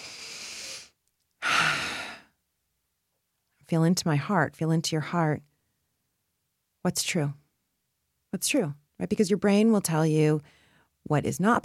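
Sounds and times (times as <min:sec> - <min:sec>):
deep breathing: 0:00.0 - 0:02.3
speech: 0:03.7 - 0:05.5, 0:06.8 - 0:07.4, 0:08.3 - 0:11.6.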